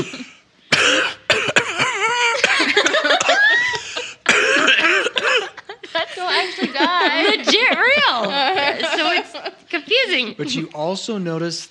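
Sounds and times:
person coughing into a microphone: 0.0 - 3.4, 4.3 - 5.6
laughter: 2.0 - 10.7
speech: 9.4 - 11.6.

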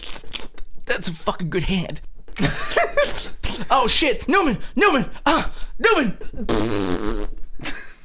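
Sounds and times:
speech: 1.0 - 7.3
loud buzzy rumbling fart: 6.5 - 7.5.

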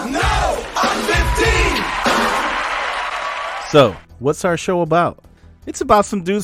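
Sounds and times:
cartoon character scream sound effect: 0.2 - 3.7
speech: 3.7 - 6.4.

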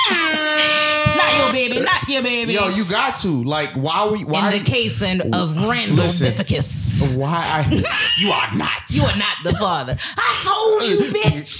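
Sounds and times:
air horn blast: 0.0 - 1.7
laughter: 0.0 - 11.5
speech: 1.5 - 11.5.

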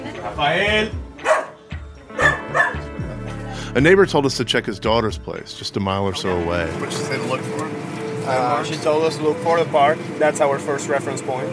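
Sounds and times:
speech: 0.2 - 1.0, 3.7 - 11.5
dog barking: 1.2 - 2.8.

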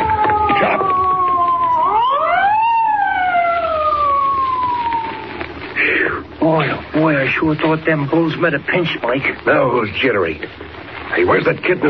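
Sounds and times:
police car siren wailing as it passes: 0.0 - 5.6
speech: 7.2 - 10.6, 11.2 - 11.8.

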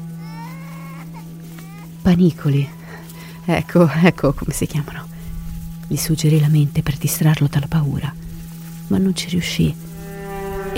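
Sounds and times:
children crying desperately with wavering wails: 0.0 - 5.3
steady low hum: 0.0 - 10.7
speech: 2.0 - 2.8, 3.5 - 5.1, 5.9 - 8.2, 8.9 - 9.8.

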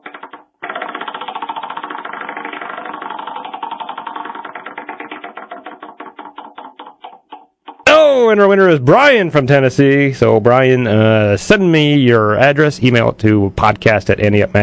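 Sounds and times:
prize wheel spinning with ratcheting clicks: 0.0 - 8.1
speech: 8.2 - 14.6.

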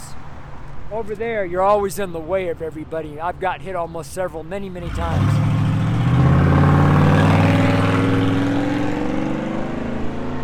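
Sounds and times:
speech: 0.9 - 5.5
loud car engine without a muffler revving on a street in Grand Junction: 4.8 - 10.4.

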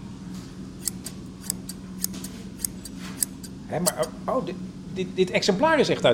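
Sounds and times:
low steady hum: 0.0 - 6.1
pair of scissors from 1964 snipping open and shut: 0.8 - 4.1
speech: 3.7 - 6.1.

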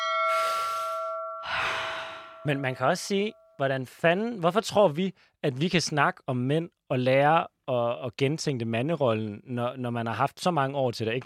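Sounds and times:
steady bell-like ringing tone: 0.0 - 3.8
deep breath in and long airy exhale: 0.2 - 2.5
speech: 2.4 - 11.2.

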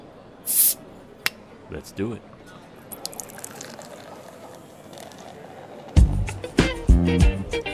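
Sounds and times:
bright hiss of escaping gas as a bottle is opened: 0.5 - 0.8
speech: 1.7 - 2.5, 7.1 - 7.4.

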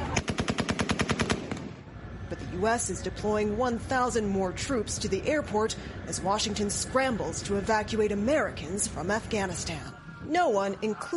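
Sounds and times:
rapid automatic gunfire: 0.2 - 1.7
speech: 2.6 - 11.1.

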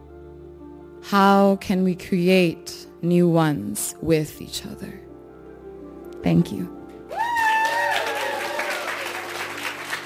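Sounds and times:
speech: 1.0 - 5.0, 6.2 - 6.8
high sustained cheer or whoop: 7.1 - 9.4
large audience applauding after a poetry performance: 7.1 - 10.0
people cheering: 7.1 - 10.0.

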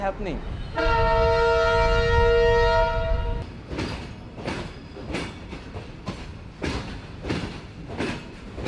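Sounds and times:
long coal freight train rumbling past on rails: 0.0 - 8.6
long freight train horn blast: 0.6 - 3.4
freight train wheels clacking over rail joints: 3.5 - 8.6.

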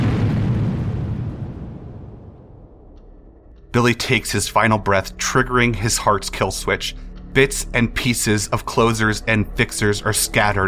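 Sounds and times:
massive explosion with deep rumbling blast and crackling debris: 0.0 - 4.5
speech: 3.8 - 10.6.

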